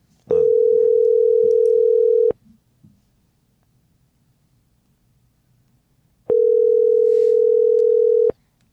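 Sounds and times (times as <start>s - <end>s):
faint hiss: 0.0s - 8.7s
telephone ringback tone while calling someone: 0.3s - 2.4s, 6.3s - 8.3s.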